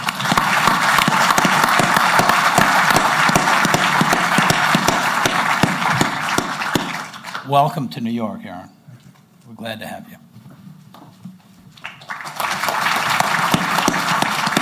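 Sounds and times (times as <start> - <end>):
sizable crowd applauding: 0.0 - 7.6, 11.7 - 14.6
speech: 7.5 - 8.8, 9.6 - 10.2.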